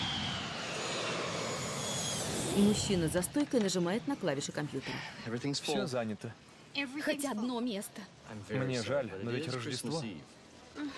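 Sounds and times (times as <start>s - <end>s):
jet airplane coming in to land: 0.0s - 3.5s
speech: 2.6s - 10.9s.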